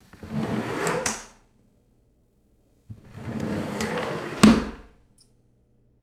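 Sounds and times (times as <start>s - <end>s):
heavy kitchen drawer opening and closing: 0.1s - 1.3s, 2.9s - 4.9s.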